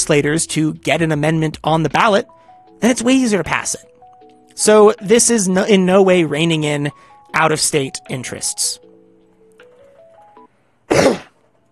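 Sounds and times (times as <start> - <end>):
speech: 0.0 - 4.0, 4.6 - 8.9, 10.9 - 11.2
single short loud cough: 10.9 - 11.4.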